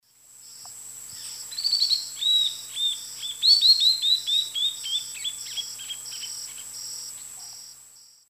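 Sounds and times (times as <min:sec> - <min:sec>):
Notharchus tectus pied puffbird singing: 0:01.1 - 0:07.6.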